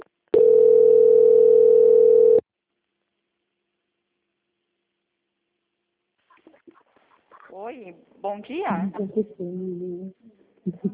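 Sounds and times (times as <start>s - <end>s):
telephone tone during a call transfer: 0.4s - 2.4s
speech: 7.6s - 10.9s.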